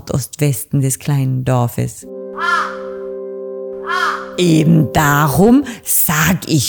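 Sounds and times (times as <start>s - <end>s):
speech: 0.2s - 2.8s, 4.4s - 6.6s
raven cawing loudly: 2.4s - 3.1s, 3.8s - 4.4s.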